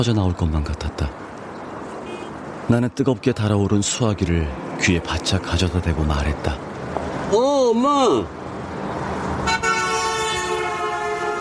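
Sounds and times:
speech: 0:00.0 - 0:01.2, 0:02.7 - 0:06.7, 0:07.3 - 0:08.4
low rumble of street traffic: 0:00.0 - 0:11.3
loud sharp car horn blaring: 0:02.0 - 0:02.4, 0:09.4 - 0:11.3.

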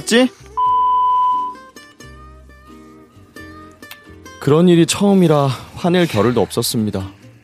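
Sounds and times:
speech: 0:00.0 - 0:00.5, 0:04.4 - 0:07.2
loud steady electronic voicemail beep: 0:00.6 - 0:01.6.

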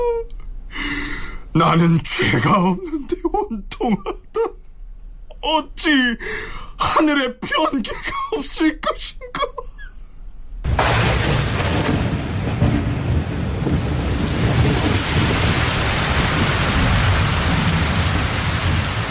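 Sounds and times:
speech: 0:01.6 - 0:04.6, 0:05.4 - 0:09.5
deep rumbling thunder: 0:10.6 - 0:19.0
heavy thunderstorm rain: 0:10.7 - 0:19.0.

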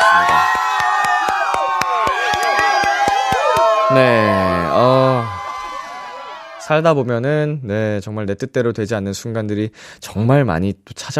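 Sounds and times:
loud crowd cheering and whooping: 0:00.0 - 0:07.2
rhythmic clapping: 0:00.2 - 0:03.8
speech: 0:03.9 - 0:05.3, 0:06.7 - 0:11.1.

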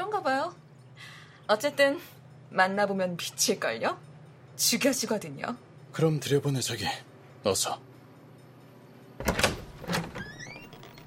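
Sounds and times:
speech: 0:01.5 - 0:07.9
door latch clicking: 0:09.2 - 0:11.0.

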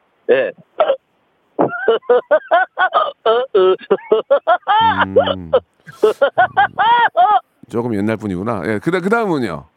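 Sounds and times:
speech: 0:00.3 - 0:01.0, 0:02.0 - 0:09.7
laughter: 0:03.6 - 0:07.4
voice imitating a drunk woodpecker pecking: 0:04.8 - 0:07.0.

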